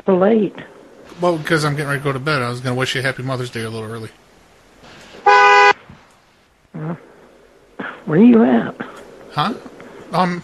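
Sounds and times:
faint noise: 0.0s - 10.4s
speech: 0.1s - 4.2s, 6.8s - 7.1s, 8.1s - 10.4s
car horn honking: 5.2s - 5.8s.

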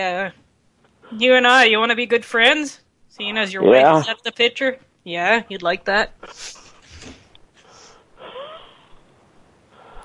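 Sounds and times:
speech: 0.0s - 0.4s, 1.1s - 7.2s
labored wheezing breathing of an old man: 7.6s - 9.0s, 9.7s - 10.0s.

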